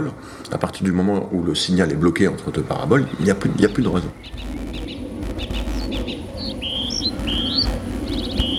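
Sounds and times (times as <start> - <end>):
speech: 0.0 - 4.6
several birds chirping and whistling outdoors: 3.0 - 8.5.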